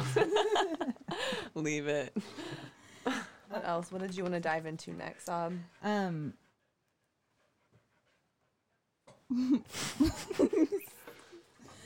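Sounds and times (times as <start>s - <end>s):
speech: 0.2s - 0.9s, 1.6s - 2.5s, 3.5s - 6.4s, 9.3s - 10.9s
female dog panting: 3.2s - 11.8s.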